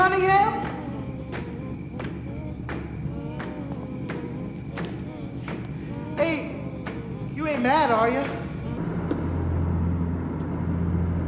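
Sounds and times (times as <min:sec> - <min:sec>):
car engine rumble while driving: 0:00.0 - 0:11.2.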